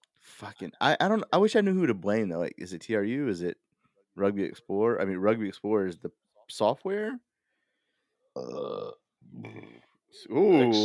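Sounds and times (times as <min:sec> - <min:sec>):
speech: 0:00.4 - 0:07.3, 0:08.4 - 0:10.8
two people burping: 0:08.4 - 0:09.8.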